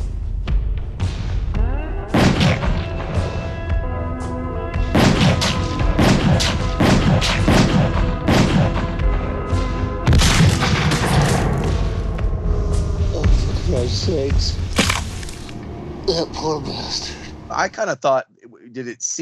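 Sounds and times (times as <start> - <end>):
movie score music: 0.0 - 19.2
gunfire volleys in a film scene: 2.2 - 3.2, 4.9 - 9.0, 10.1 - 11.6
speech: 16.2 - 19.2.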